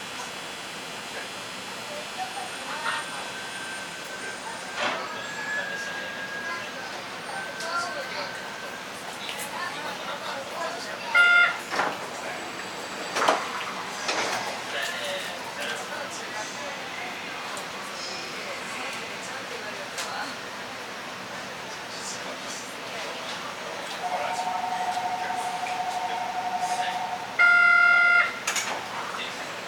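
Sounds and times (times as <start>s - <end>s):
1000 series monorail train arriving at a station in Japan: 0.0s - 29.6s
voices: 1.0s - 29.6s
monorail sliding doors opening with pneumatic whooshes: 11.6s - 14.7s.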